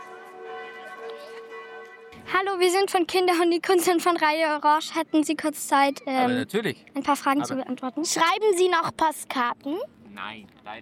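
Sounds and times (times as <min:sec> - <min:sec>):
church bells ringing: 0:00.0 - 0:02.3
murmur of activity: 0:00.0 - 0:10.8
speech: 0:02.3 - 0:10.8.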